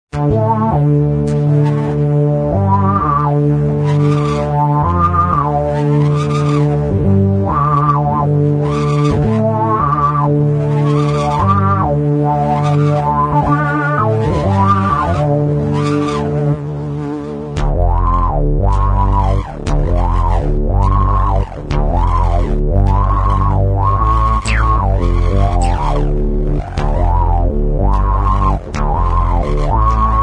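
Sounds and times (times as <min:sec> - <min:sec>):
fuzz bass sweep: 0:00.1 - 0:30.2.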